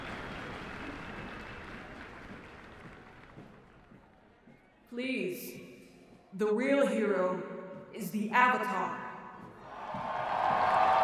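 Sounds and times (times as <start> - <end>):
large crowd applauding: 0.0 - 4.4, 9.6 - 11.0
speech: 5.0 - 5.7, 6.4 - 9.0.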